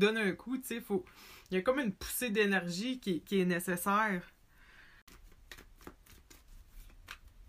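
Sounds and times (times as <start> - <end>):
speech: 0.0 - 4.4
cards being shuffled before one is drawn: 5.1 - 7.4.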